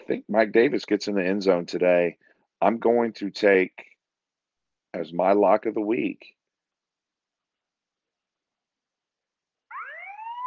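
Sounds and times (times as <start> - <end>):
speech: 0.1 - 3.9, 4.9 - 6.4
alarm siren wailing: 9.7 - 10.4.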